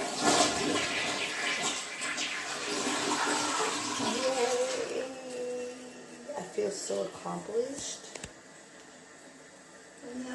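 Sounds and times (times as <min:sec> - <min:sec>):
toilet flushing: 0:00.0 - 0:05.2
speech: 0:06.8 - 0:08.1.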